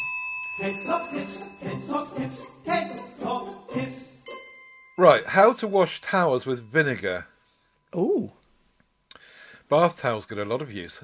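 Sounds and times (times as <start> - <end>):
bicycle bell ringing: 0.0 - 1.6, 4.3 - 7.2
speech: 0.6 - 4.1, 5.0 - 7.3, 7.9 - 8.4, 9.7 - 11.0
short bouncy musical jingle: 0.6 - 6.8.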